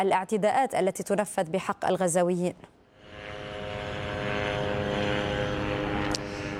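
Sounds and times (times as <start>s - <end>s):
speech: 0.0s - 2.8s
Israeli reconnaissance drone propeller buzzing at very low altitude over Gaza City: 3.0s - 6.5s.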